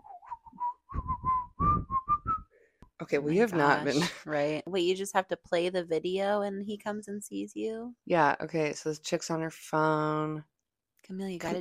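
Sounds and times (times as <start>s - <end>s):
person whistling a fast-food burger jingle: 0.0s - 2.5s
speech: 3.0s - 11.5s.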